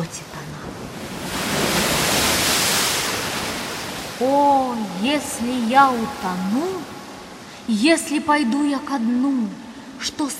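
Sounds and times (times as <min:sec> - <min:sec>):
stormy sea with high waves crashing: 0:00.0 - 0:07.8
speech: 0:05.0 - 0:07.0, 0:07.7 - 0:10.3.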